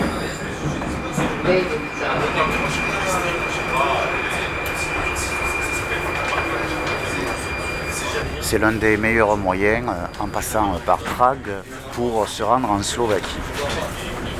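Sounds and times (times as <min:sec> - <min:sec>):
sustained high whine overhead in a metro train: 0:00.0 - 0:11.1
Prague metro train running with rumble and rattling: 0:00.0 - 0:14.3
faint voices murmuring in a metro carriage: 0:00.0 - 0:14.3
speech: 0:01.5 - 0:02.6, 0:08.5 - 0:14.2.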